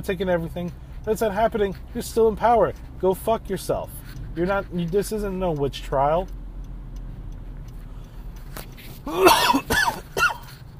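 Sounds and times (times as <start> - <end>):
speech: 0.0 - 6.4, 9.0 - 9.8
person coughing: 9.0 - 10.5
person clearing throat: 9.1 - 10.5.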